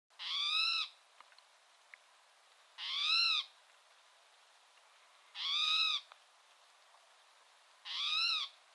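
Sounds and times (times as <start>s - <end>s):
Spotted towhee calls in the USA: 0.2s - 1.0s, 2.8s - 3.6s, 5.3s - 6.1s, 7.8s - 8.6s.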